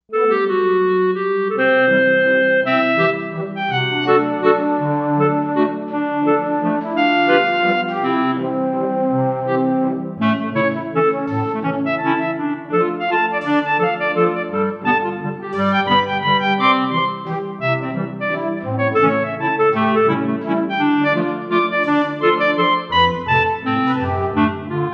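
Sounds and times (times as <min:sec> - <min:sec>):
synthesized woodwinds on a Korg M1: 0:00.1 - 0:24.9.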